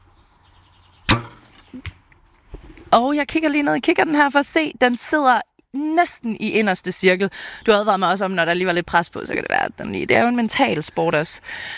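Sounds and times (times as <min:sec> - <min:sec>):
bow twang: 0:01.1 - 0:02.0
arrow thuds striking a target: 0:01.1 - 0:02.8
speech: 0:02.9 - 0:11.7.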